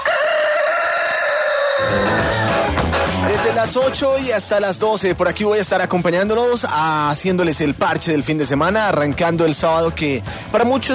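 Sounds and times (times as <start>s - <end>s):
rooster crowing in one long strained call: 0.0s - 2.7s
speech: 3.6s - 10.9s.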